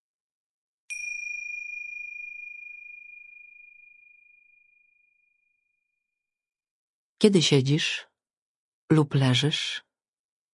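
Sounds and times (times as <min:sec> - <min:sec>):
meditation bell struck to begin a meditation exercise: 0:00.9 - 0:05.9
speech: 0:07.2 - 0:08.1, 0:08.9 - 0:09.9.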